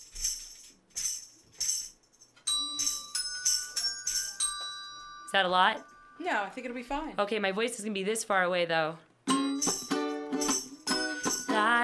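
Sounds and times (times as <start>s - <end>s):
bells being rung: 2.5s - 6.8s, 9.3s - 11.8s
speech: 5.3s - 9.5s.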